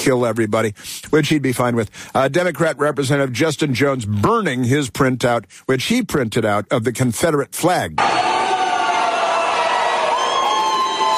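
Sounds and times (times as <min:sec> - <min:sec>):
speech: 0:00.0 - 0:08.3
large crowd jeering and shouting: 0:08.0 - 0:11.1.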